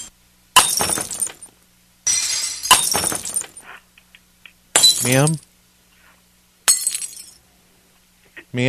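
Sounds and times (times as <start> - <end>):
glass candles shattering on the floor: 0.6 - 1.5, 2.1 - 3.6, 4.8 - 5.4, 6.7 - 7.4
speech: 5.0 - 5.5.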